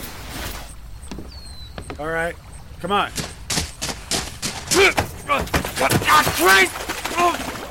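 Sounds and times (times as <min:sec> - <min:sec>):
speech: 0:02.0 - 0:03.3, 0:04.8 - 0:07.5
body slamming against a wooden raft's gunwale while climbing aboard: 0:03.1 - 0:06.5.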